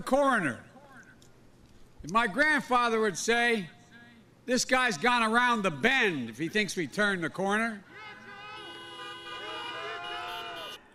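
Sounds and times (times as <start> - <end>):
speech: 0.0 - 0.7, 2.0 - 3.8, 4.5 - 7.9
many car horns honking at a drive-in rally: 7.8 - 10.9.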